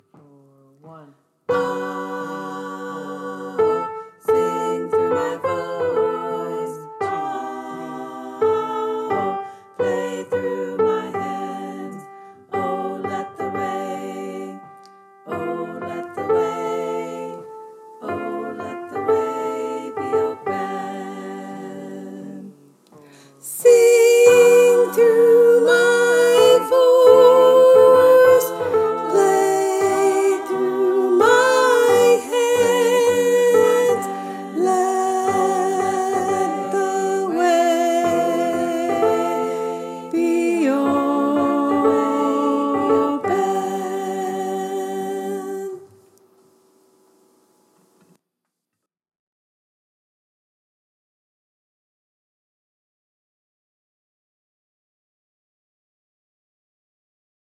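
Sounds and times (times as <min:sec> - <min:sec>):
choir singing high descant: 0:01.5 - 0:22.8, 0:23.5 - 0:45.9.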